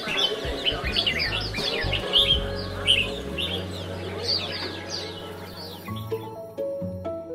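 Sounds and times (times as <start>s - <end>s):
murmur of voices: 0.0s - 6.1s
many caged songbirds singing in chorus: 0.0s - 7.3s.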